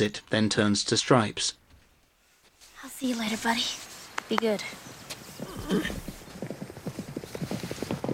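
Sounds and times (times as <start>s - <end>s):
speech: 0.0s - 1.6s, 3.0s - 5.0s, 5.7s - 6.1s
Thoroughbred horses galloping on a racetrack: 4.2s - 8.1s.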